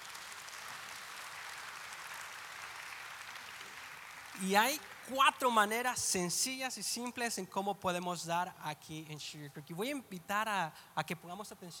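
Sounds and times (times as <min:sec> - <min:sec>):
church audience applauding: 0:00.0 - 0:05.9
speech: 0:04.4 - 0:11.7.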